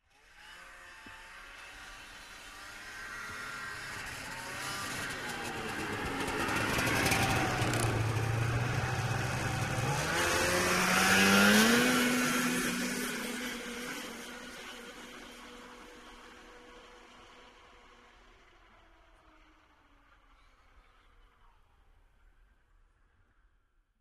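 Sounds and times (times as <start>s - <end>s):
snowmobile passing by: 0.1s - 18.8s.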